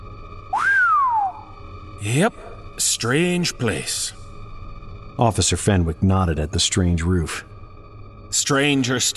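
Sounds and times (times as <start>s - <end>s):
person whistling in amazement, a sliding wolf-whistle-like note: 0.5s - 1.6s
speech: 2.0s - 4.2s, 5.2s - 7.5s, 8.3s - 9.1s.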